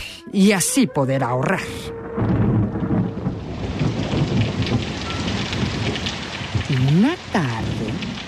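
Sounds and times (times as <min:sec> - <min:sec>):
speech: 0:00.3 - 0:02.3, 0:07.0 - 0:07.7
deep rumble of thunder: 0:01.6 - 0:08.2
heavy torrential rain: 0:01.6 - 0:08.2.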